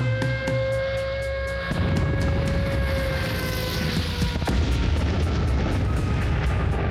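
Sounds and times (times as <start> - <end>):
air-raid siren in London: 0.0 - 6.8
continuous loud roar: 0.0 - 6.8
bomb explosions in London: 1.8 - 6.8.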